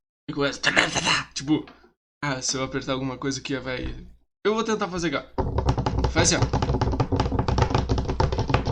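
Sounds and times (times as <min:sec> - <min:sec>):
speech: 0:00.3 - 0:05.5, 0:06.1 - 0:06.8
rapid hard tapping on computer keyboard keys: 0:05.0 - 0:08.7.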